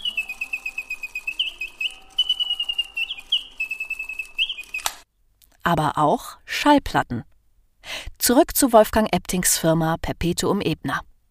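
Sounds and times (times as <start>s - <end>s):
mechanical singing bird automaton chirping: 0.0s - 5.0s
sharp click of mechanical singing bird automaton: 3.9s - 5.0s
speech: 5.7s - 7.3s, 8.3s - 11.1s.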